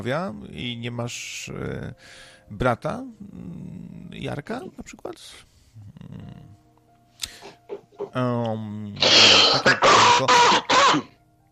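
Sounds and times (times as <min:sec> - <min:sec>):
speech: 0:00.0 - 0:06.4, 0:08.1 - 0:11.2
person groaning: 0:09.0 - 0:10.7
coughing and throat clearing into a microphone: 0:09.0 - 0:11.2.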